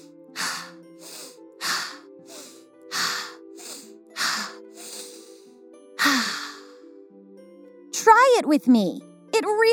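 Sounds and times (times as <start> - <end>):
slow deep breaths for a calming breathing exercise: 0.0 - 7.0
soft sustained music: 0.0 - 9.7
speech: 8.4 - 9.7.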